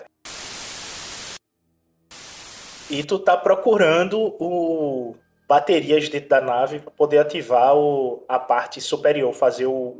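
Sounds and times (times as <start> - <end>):
communicator radio static hiss: 0.0 - 1.4, 2.1 - 3.1
speech: 2.9 - 9.9.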